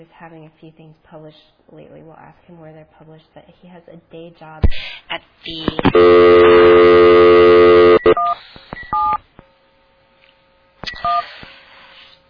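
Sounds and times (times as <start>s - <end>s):
speech: 0.0s - 7.0s, 8.3s - 8.6s
steady telephone dial tone: 5.9s - 8.4s
telephone touch-tone keys dialing: 5.9s - 9.2s, 11.0s - 11.2s.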